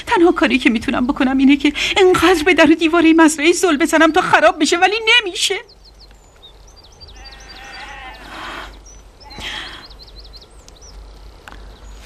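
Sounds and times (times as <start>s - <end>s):
small birds chirping high: 0.0s - 12.0s
speech: 0.2s - 5.8s
sheep bleating loudly on a farm: 7.1s - 9.6s.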